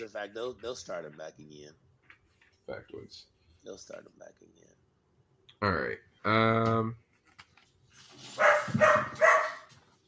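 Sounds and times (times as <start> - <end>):
speech: 0.0 - 1.9, 2.7 - 4.8, 5.6 - 7.0
dog barking: 8.4 - 9.7.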